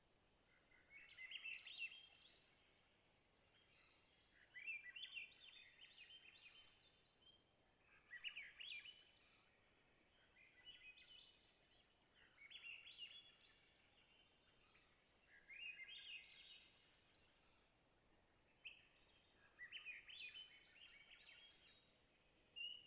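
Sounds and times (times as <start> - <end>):
Swainson's thrush singing at a boreal taiga lake: 0.5 - 17.7, 18.3 - 22.8.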